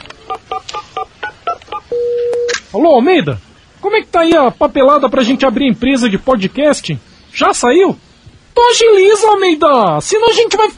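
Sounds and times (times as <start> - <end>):
telephone number being dialed with touch-tone beeps: 0.3 - 2.6
speech: 2.7 - 10.7.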